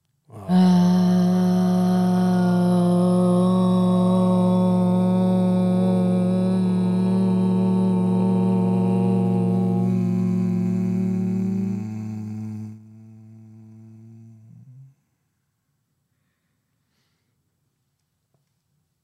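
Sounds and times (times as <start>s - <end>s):
group chanting Om: 0.3s - 15.0s.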